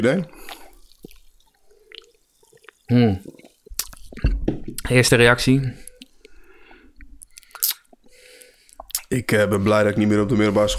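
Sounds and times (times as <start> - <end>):
speech: 0.0 - 0.6, 2.9 - 3.4, 4.9 - 5.8, 9.1 - 10.7
person slurping a sip of cola: 0.3 - 4.2.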